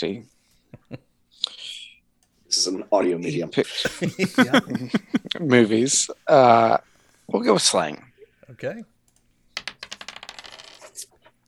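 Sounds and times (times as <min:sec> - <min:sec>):
speech: 0:00.0 - 0:01.6, 0:02.5 - 0:08.9
laughter: 0:03.7 - 0:06.6
dice rolling: 0:09.5 - 0:11.1.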